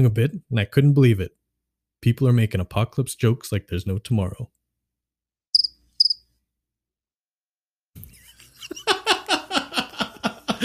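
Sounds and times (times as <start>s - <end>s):
speech: 0.0s - 1.4s, 2.0s - 4.6s
cricket chirps played from phone: 5.6s - 6.2s
people laughing: 8.0s - 10.6s.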